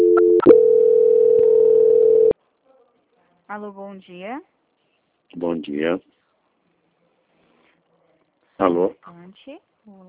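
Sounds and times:
telephone tone during a call transfer: 0.0 - 2.4
speech: 3.5 - 4.6, 5.3 - 6.2, 8.6 - 10.0.

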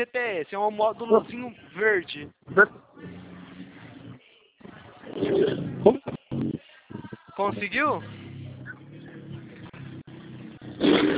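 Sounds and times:
speech: 0.0 - 3.2, 5.4 - 6.2, 7.4 - 8.2, 10.8 - 11.1
motorcycle engine roaring: 7.9 - 11.1.

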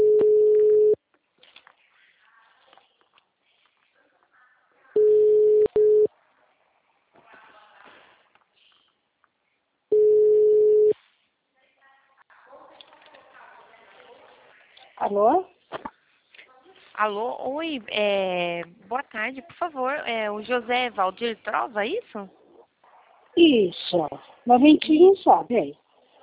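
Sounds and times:
telephone ringback tone while placing a call: 0.0 - 1.0, 5.0 - 6.1, 9.9 - 10.9
speech: 15.1 - 15.5, 17.0 - 22.4, 23.4 - 25.8.

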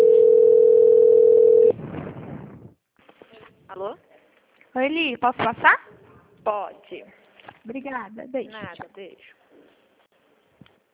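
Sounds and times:
steady telephone tone while a call is transferred: 0.0 - 1.8
speech: 4.8 - 9.4.

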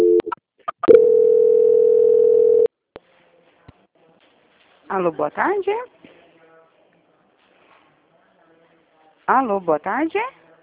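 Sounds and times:
telephone line tone during a call transfer: 0.0 - 2.7
speech: 4.9 - 5.9, 9.3 - 10.4.

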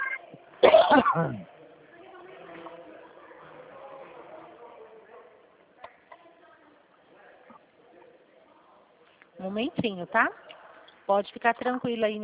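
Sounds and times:
low murmur and faint indistinct voices: 0.0 - 12.2
person giving a sharp harsh cough: 0.6 - 1.4
throat clearing: 0.6 - 1.5
speech: 0.9 - 1.5, 9.5 - 10.5, 11.1 - 12.2.

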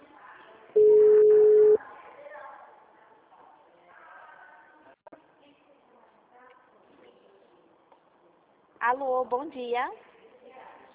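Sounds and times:
telephone ringback tone while a bank agent phones a client: 0.8 - 1.8
speech: 8.9 - 10.1.

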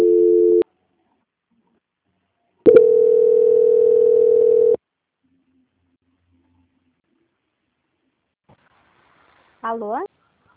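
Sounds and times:
telephone tones while a bank call is transferred: 2.7 - 4.8
speech: 9.7 - 10.1.

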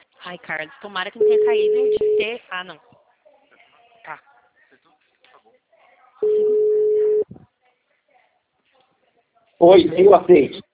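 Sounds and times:
quiet talk: 0.0 - 10.7
speech: 0.3 - 2.9, 4.0 - 4.3, 9.6 - 10.6
busy tone after a dropped phone call: 1.2 - 2.3, 6.2 - 7.3.

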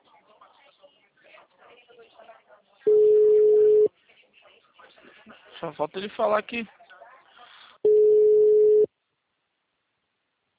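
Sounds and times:
telephone ringback tone while waiting for an answer: 2.9 - 3.9, 7.9 - 8.9
speech: 5.6 - 6.8.

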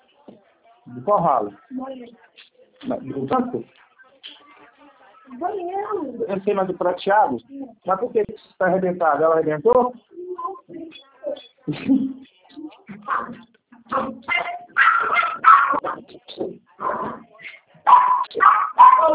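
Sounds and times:
speech: 0.9 - 3.8, 5.3 - 10.0, 11.7 - 12.1
dog barking and whimpering: 13.0 - 16.0, 17.9 - 19.1.

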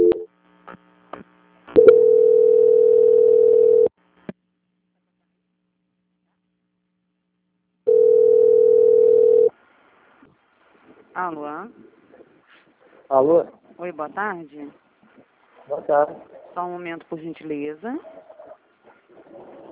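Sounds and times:
long steady mid-pitched telephone tones during call transfer: 0.0 - 0.3, 1.8 - 3.9, 7.9 - 9.5
telephone line clicks and beeps during call transfer: 1.8 - 3.9
speech: 13.1 - 14.8, 15.7 - 18.2.

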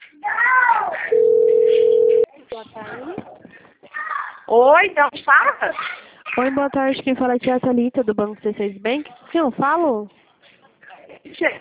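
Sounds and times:
telephone dial tone while a call is placed: 1.1 - 2.3
speech: 4.5 - 10.2, 11.4 - 11.5.

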